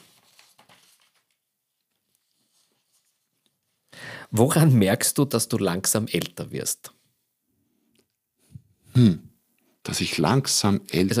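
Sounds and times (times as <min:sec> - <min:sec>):
paper pages rustling as they are flipped: 0:00.0 - 0:03.9
speech: 0:04.3 - 0:07.0, 0:09.0 - 0:11.1.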